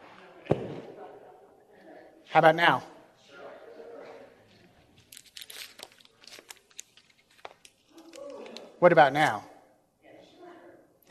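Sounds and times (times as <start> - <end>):
speech: 2.3 - 2.9, 8.8 - 9.5
100 dollar paper banknote being crumpled and torn: 5.0 - 8.6.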